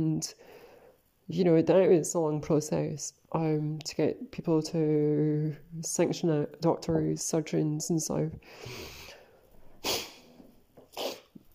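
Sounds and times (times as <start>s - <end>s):
speech: 0.0s - 0.6s, 1.3s - 9.1s
person blowing nose: 8.6s - 9.2s, 9.8s - 11.5s.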